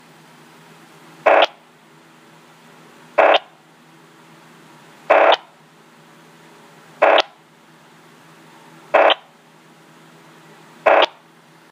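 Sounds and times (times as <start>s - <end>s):
MotoTRBO CapacityPlus trunking system resting burst: 1.3s - 1.6s, 3.2s - 3.5s, 5.1s - 5.5s, 7.0s - 7.4s, 9.0s - 9.3s, 10.9s - 11.2s.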